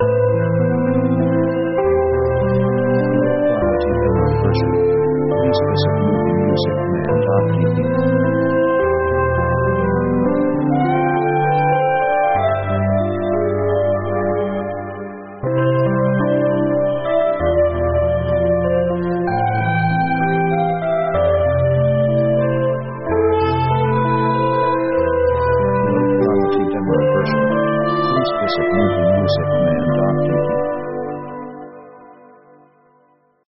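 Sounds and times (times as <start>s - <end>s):
synth orchestra playing an American waltz: 0.0s - 32.0s.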